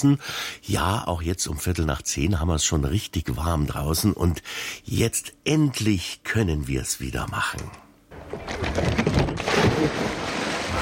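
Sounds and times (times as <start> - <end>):
speech: 0.0 - 10.0
body plunging into water: 9.3 - 10.7.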